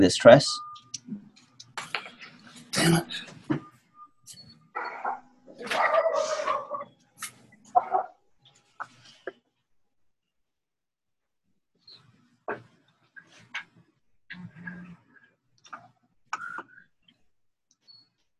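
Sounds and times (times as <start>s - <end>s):
speech: 0.0s - 1.2s, 2.8s - 3.6s
dog barking and yelping: 4.8s - 6.8s, 7.7s - 8.1s.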